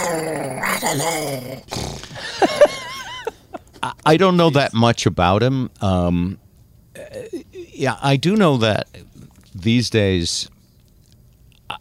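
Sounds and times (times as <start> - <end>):
dog growling: 0.0 - 2.0
speech: 0.2 - 1.8, 3.8 - 6.4, 7.0 - 10.6
laughter: 2.2 - 4.0.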